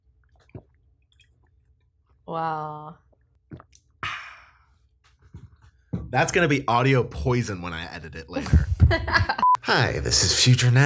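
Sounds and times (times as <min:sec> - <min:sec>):
person swallowing water: 0:00.0 - 0:02.0, 0:03.0 - 0:04.3
speech: 0:02.3 - 0:03.0, 0:06.1 - 0:10.8.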